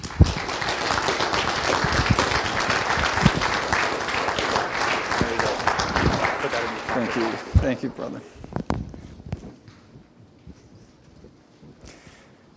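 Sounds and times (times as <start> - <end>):
sharp individual claps: 0.0 - 7.7
audience applause welcoming a speaker at a morning gathering: 0.0 - 8.0
speech: 7.7 - 8.5.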